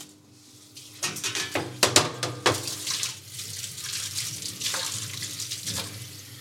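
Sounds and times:
tap water running over desalted mackerel fillets: 0:00.7 - 0:06.3
water splashing while rinsing mackerel fillets: 0:02.5 - 0:06.0.

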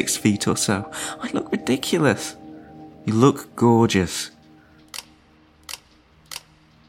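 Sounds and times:
speech: 0:00.0 - 0:02.4, 0:03.1 - 0:04.4
camera shutter clicking: 0:05.7 - 0:06.5.

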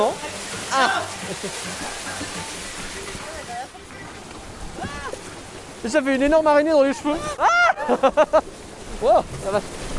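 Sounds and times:
waterfall splashing over a water ride: 0:00.0 - 0:09.9
laughter: 0:00.7 - 0:02.5, 0:07.4 - 0:08.5
speech: 0:00.8 - 0:02.9, 0:05.8 - 0:09.8
voices exclaiming: 0:07.0 - 0:08.0.

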